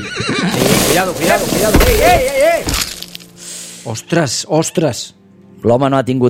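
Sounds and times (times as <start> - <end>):
horse whinnying loudly: 0.0 - 1.1
speech: 1.0 - 2.8, 3.8 - 6.2.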